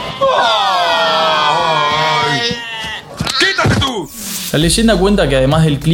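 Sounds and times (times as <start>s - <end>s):
sheep bleating: 0.0s - 3.9s
speech: 4.5s - 5.9s.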